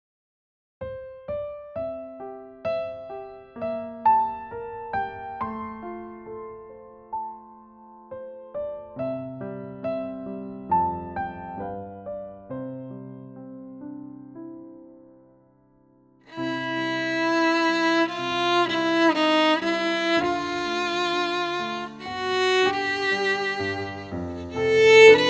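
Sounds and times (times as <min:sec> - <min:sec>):
piano: 0:00.8 - 0:25.2
violin: 0:16.3 - 0:25.2.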